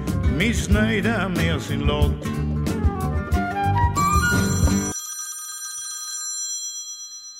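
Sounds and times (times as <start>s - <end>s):
busy music: 0.0s - 5.0s
speech: 0.4s - 2.4s
telephone ringing: 4.4s - 7.3s.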